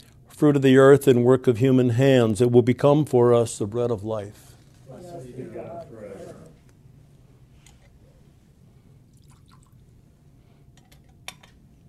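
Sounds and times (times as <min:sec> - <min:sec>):
low steady room hum: 0:00.0 - 0:11.8
speech: 0:00.4 - 0:06.0
person speaking a liturgical prayer: 0:04.9 - 0:06.6
water trickling and dripping into a cup of wine: 0:09.1 - 0:09.8.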